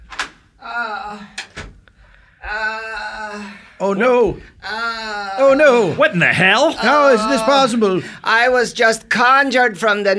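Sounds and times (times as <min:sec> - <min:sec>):
door hinges creaking: 0:00.0 - 0:00.4, 0:01.2 - 0:01.9
speech: 0:03.8 - 0:10.1.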